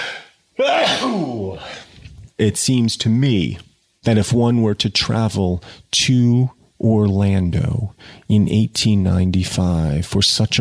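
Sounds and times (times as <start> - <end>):
person sneezing: 0.0 - 1.9
speech: 2.4 - 10.5.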